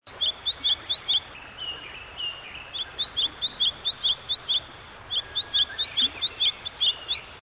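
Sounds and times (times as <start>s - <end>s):
bird calling with quick high chirps: 0.1s - 7.4s
steady faint background hiss: 0.1s - 7.4s.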